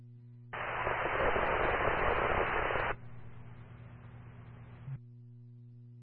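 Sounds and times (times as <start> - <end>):
radio static hissing: 0.6 - 5.0.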